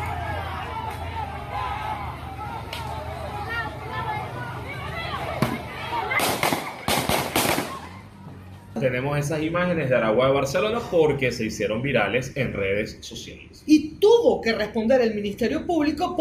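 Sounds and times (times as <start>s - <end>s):
noisy chattering crowd: 0.0s - 13.5s
gunshots fired by a National Guard member at people leaving a gas station: 5.4s - 8.0s
speech: 8.8s - 16.1s.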